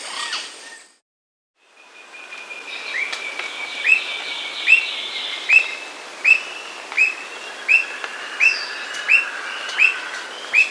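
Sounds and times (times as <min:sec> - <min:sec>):
faint hiss: 0:01.8 - 0:10.6
Squirrel cuckoo calling with short sharp upslurred notes: 0:05.5 - 0:10.6.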